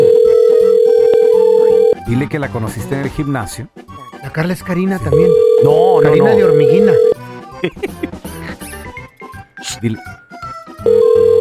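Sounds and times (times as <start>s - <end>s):
telephone dial tone: 0.0s - 2.0s, 5.1s - 7.2s, 10.9s - 11.3s
speech: 2.2s - 7.9s, 9.8s - 10.2s
laughter: 7.5s - 8.6s.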